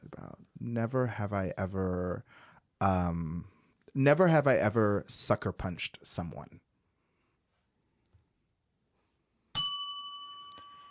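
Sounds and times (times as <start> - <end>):
speech: 0.6 - 6.7
small bell ding: 9.5 - 10.8.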